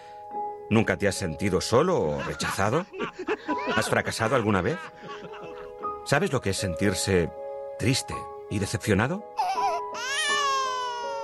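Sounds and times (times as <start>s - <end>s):
speech: 0.7s - 5.5s, 6.1s - 9.6s
laughter: 2.1s - 5.8s
newborn baby crying loudly: 9.4s - 11.2s.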